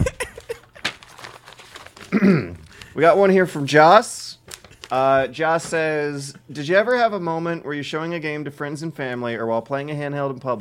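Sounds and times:
paper letter crinkling and rustling as it is handed over: 0.0s - 3.4s, 4.4s - 5.8s
speech: 2.2s - 4.2s, 4.9s - 10.5s.

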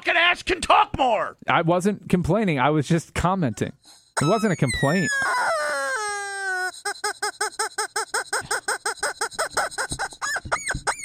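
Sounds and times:
speech: 0.3s - 5.6s
squeaky rubber chicken dog toy squeaking: 4.2s - 11.0s.

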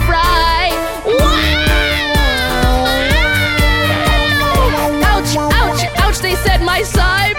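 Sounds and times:
steady thumping musical beat: 0.5s - 7.3s
voice imitating a loud baby wail in a song: 1.1s - 6.0s.

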